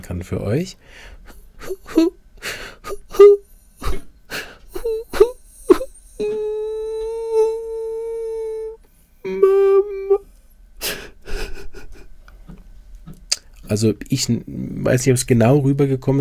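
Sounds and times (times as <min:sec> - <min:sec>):
speech: 0:00.0 - 0:02.6, 0:13.7 - 0:16.1
voice imitating a child's pitiful crying and sobbing: 0:01.6 - 0:02.2, 0:02.8 - 0:04.1, 0:04.7 - 0:10.2.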